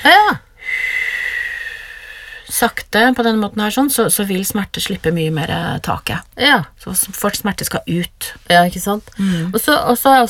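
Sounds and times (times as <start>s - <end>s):
slow exhale through pursed lips: 0.6s - 2.5s
speech: 2.5s - 10.2s.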